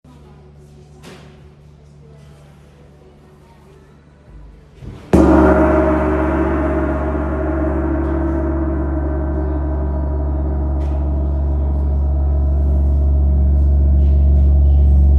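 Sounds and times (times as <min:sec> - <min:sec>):
tam-tam: 0:05.2 - 0:15.1.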